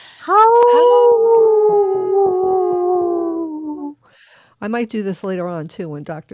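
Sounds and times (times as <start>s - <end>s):
speech: 0.2s - 0.8s, 4.6s - 6.3s
person howling like a wolf: 0.2s - 3.9s.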